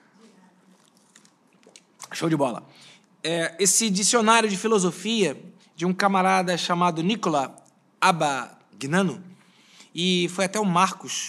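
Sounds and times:
person sipping water: 0:00.7 - 0:02.1
speech: 0:02.2 - 0:09.3, 0:10.0 - 0:11.2.

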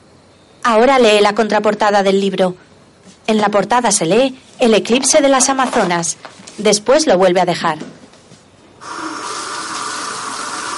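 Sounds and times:
speech: 0:00.6 - 0:08.0
bathroom tap water gushing into sink for washing the face: 0:08.8 - 0:10.7.

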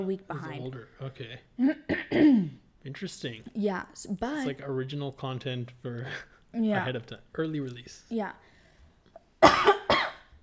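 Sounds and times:
speech: 0:00.0 - 0:08.5
two sharp coughs: 0:01.6 - 0:02.6, 0:09.4 - 0:10.3.

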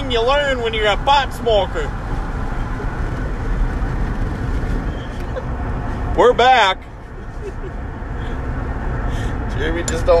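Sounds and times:
road rumble: 0:00.0 - 0:10.1
rushing wind through open truck window: 0:00.0 - 0:10.1
truck driving with window open, deep engine roar: 0:00.0 - 0:10.1
speech: 0:00.1 - 0:02.0, 0:06.2 - 0:07.8, 0:09.6 - 0:10.1.

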